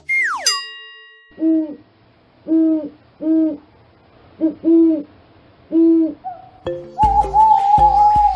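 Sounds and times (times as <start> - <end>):
quick falling whistle: 0.0 - 0.6, 7.0 - 8.3
brief tonal jingle: 0.4 - 1.6
owl hooting: 1.4 - 1.8, 2.4 - 3.7, 4.4 - 8.3.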